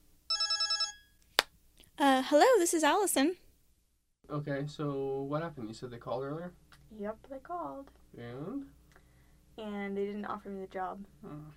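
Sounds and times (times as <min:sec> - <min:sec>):
telephone ringing: 0:00.3 - 0:01.2
speech: 0:02.2 - 0:03.4, 0:04.3 - 0:08.8, 0:09.6 - 0:11.5.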